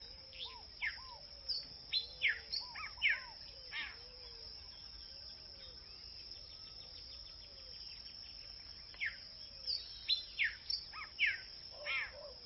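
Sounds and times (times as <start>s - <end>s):
tolditos birds: 0.0s - 12.4s.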